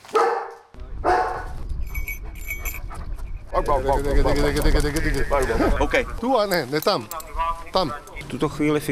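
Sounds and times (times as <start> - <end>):
search and rescue dogs barking: 0.0 - 1.6
speech: 3.6 - 8.8.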